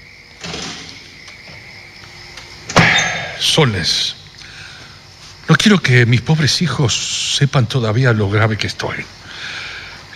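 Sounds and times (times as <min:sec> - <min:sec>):
door being pulled closed: 0:00.4 - 0:01.6
speech: 0:03.4 - 0:04.2, 0:05.5 - 0:09.2.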